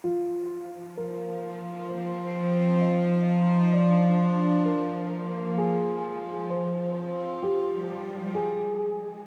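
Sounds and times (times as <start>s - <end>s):
solo piano arpeggio: 0.0s - 9.2s.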